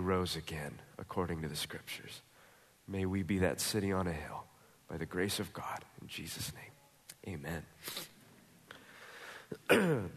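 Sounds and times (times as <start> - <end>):
speech: 0.1 - 2.3, 2.9 - 8.1, 9.5 - 10.1
person coughing: 9.5 - 10.1.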